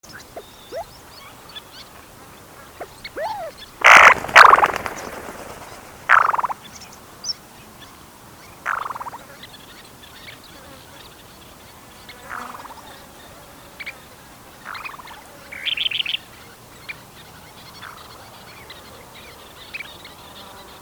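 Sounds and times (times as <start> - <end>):
black-bellied sandgrouse Pterocles orientalis arenarius calling: 0.1 - 7.4, 8.4 - 11.2, 12.3 - 20.3.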